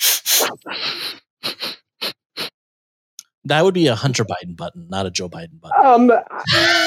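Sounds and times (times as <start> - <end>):
person imitating sniffing: 0.0 - 2.6
speech: 3.5 - 6.8.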